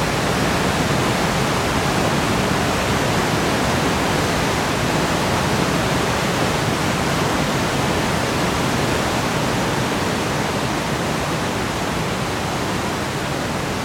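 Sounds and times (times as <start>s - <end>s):
forest stream: 0.0s - 13.8s.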